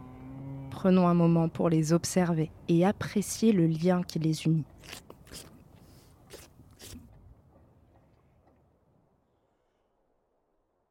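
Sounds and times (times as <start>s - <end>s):
speech: 0.8s - 5.5s
cow licking her calf: 4.0s - 8.6s
rustling: 4.8s - 7.2s.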